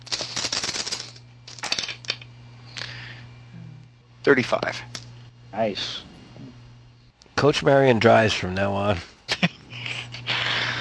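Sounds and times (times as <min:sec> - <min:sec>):
handful of dice rattling and clattering across a hard surface: 0:00.0 - 0:02.2
faint steady hum: 0:00.0 - 0:10.7
speech: 0:04.2 - 0:05.0, 0:05.6 - 0:06.1, 0:07.4 - 0:09.1.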